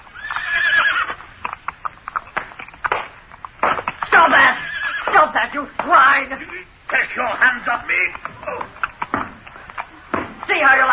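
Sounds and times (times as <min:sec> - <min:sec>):
horse hooves clattering and stamping: 0:00.0 - 0:10.9
horse whinnying: 0:00.1 - 0:01.2, 0:04.3 - 0:05.2
speech: 0:05.4 - 0:08.6, 0:10.5 - 0:10.9.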